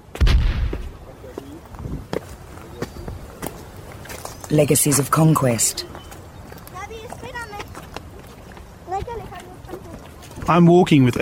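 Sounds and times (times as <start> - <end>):
sharper fainter artillery shots in a dramatized battle: 0.2 - 1.0
heavy artillery blast in a dramatized battle: 0.2 - 1.1
speech: 4.5 - 6.0, 10.5 - 11.2.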